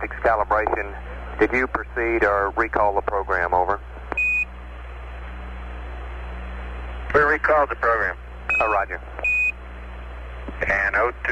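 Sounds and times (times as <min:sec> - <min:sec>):
speech: 0:00.0 - 0:03.9, 0:07.1 - 0:09.3, 0:10.6 - 0:11.3
steady low hum: 0:00.0 - 0:11.3
spacecraft master alarm tone beeping: 0:04.2 - 0:04.5, 0:08.5 - 0:09.6.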